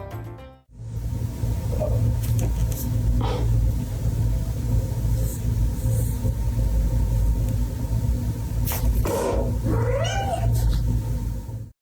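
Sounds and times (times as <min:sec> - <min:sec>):
steady low engine-like rumble: 0:00.8 - 0:11.7
cat meowing and yowling after a bath: 0:09.1 - 0:10.8.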